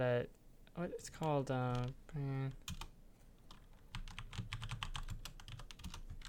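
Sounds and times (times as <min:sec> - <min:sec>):
speech: 0:00.0 - 0:02.8
typing on a computer keyboard: 0:01.7 - 0:02.0, 0:02.6 - 0:02.9, 0:03.5 - 0:06.2.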